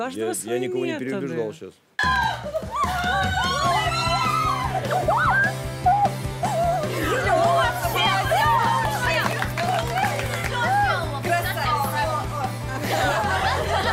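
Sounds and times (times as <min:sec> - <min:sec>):
speech: 0:00.0 - 0:04.0
dense crowd of a performer's supporters shrieking and screaming: 0:02.0 - 0:11.2
chatter: 0:02.7 - 0:13.9
laughter: 0:12.7 - 0:13.9.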